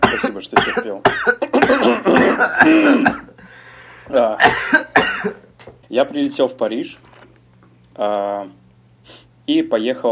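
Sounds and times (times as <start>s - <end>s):
man coughing to clear his throat: 0.0s - 3.4s, 4.1s - 5.5s
speech: 0.4s - 1.2s, 6.0s - 7.1s, 8.0s - 10.0s.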